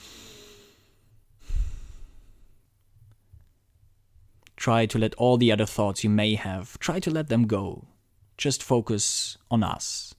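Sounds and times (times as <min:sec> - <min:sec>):
deep breath: 0:00.0 - 0:02.7
speech: 0:04.6 - 0:10.1.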